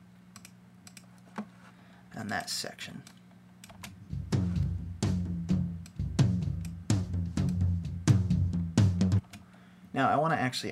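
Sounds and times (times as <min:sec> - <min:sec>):
speech: 0:02.2 - 0:03.2, 0:10.0 - 0:10.6
soloed drum toms EQ-boosted for low body and bright attack and gated hard: 0:03.9 - 0:09.3.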